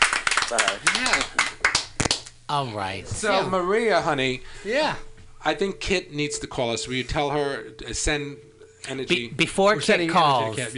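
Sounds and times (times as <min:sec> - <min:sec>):
hand claps: 0:00.0 - 0:02.4
speech: 0:00.5 - 0:01.8, 0:02.5 - 0:10.7.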